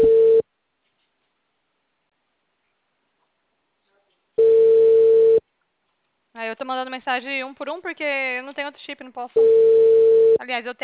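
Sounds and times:
telephone dial tone while placing a call: 0.0s - 0.4s, 4.4s - 5.4s, 9.4s - 10.4s
speech: 6.6s - 10.8s.

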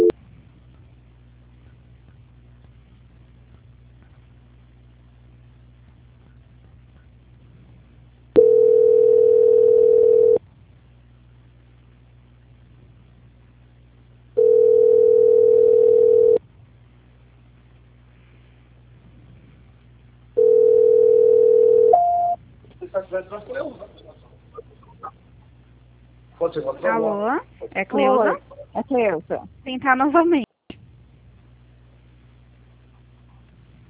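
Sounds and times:
low telephone line hum: 0.0s - 33.8s
telephone line tones during a call transfer: 8.4s - 10.4s, 14.4s - 16.4s, 20.4s - 22.4s
speech: 26.8s - 30.5s.

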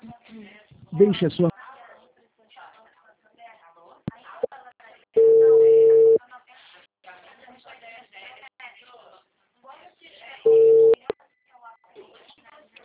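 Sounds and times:
speech: 0.9s - 1.5s
telephone beeps after a dropped call: 5.2s - 6.2s, 10.5s - 11.0s.

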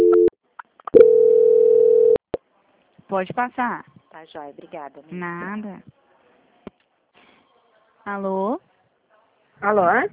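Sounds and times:
long even mid-pitched telephone tone during a call transfer: 0.0s - 0.3s, 1.0s - 2.2s
speech: 3.1s - 6.0s, 8.0s - 8.7s, 9.6s - 10.1s.

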